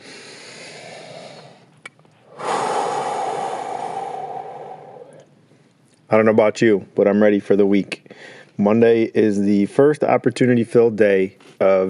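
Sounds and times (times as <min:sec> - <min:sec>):
deep breath: 0:00.0 - 0:05.7, 0:08.1 - 0:08.5
speech: 0:06.1 - 0:11.8.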